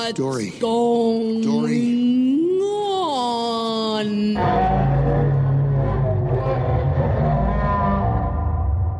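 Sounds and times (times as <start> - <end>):
speech: 0.1 - 2.0
voice mimicking whale speech with a warbling low moan: 1.4 - 8.8.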